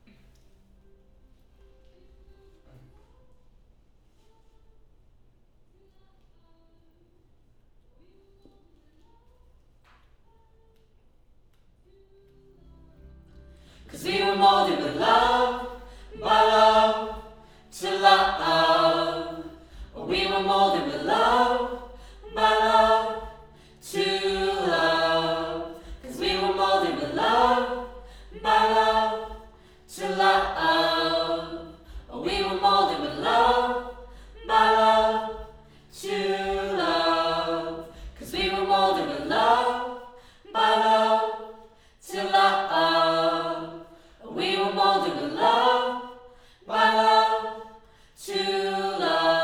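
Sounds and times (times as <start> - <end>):
choir singing: 13.6 - 49.4.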